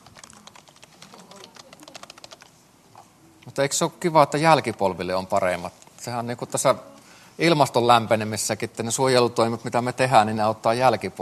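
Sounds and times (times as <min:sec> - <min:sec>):
rapid uneven keyboard typing of notes: 0:00.0 - 0:02.6
faint noise: 0:00.0 - 0:11.1
speech: 0:03.5 - 0:11.1.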